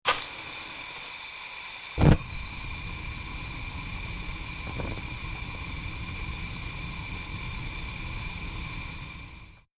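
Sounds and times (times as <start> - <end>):
gas stove being lit with a match: 0.1 - 9.7
gas stove flames burning: 0.1 - 9.7.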